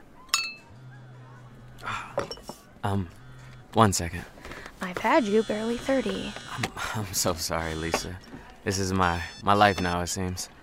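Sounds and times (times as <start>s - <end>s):
glasses clinking in a toast: 0.3s - 0.7s, 2.1s - 2.7s
speech: 1.8s - 10.6s.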